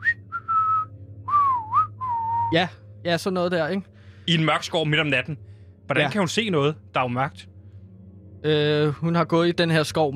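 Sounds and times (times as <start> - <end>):
person whistling a melody from a German horror film: 0.0 - 2.7
speech: 2.5 - 7.5, 8.4 - 10.1.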